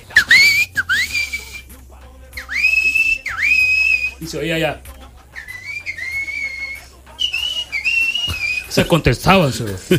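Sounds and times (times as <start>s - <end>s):
clear whistled notes sliding upward and held steady: 0.1s - 1.7s, 2.4s - 4.4s, 5.3s - 9.0s
speech: 4.2s - 4.9s, 8.8s - 9.9s.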